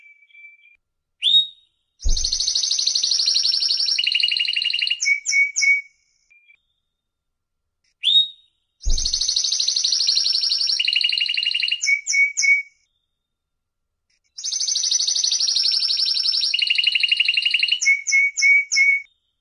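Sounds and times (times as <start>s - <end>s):
canary singing trills: 0.0s - 6.6s, 8.0s - 12.6s, 14.4s - 19.1s
faint low thump: 2.0s - 2.4s, 8.9s - 9.2s.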